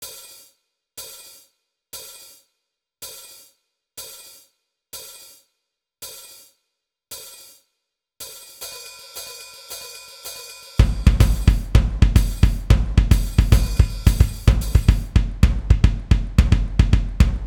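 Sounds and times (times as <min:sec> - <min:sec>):
drum set song: 0:09.1 - 0:17.4.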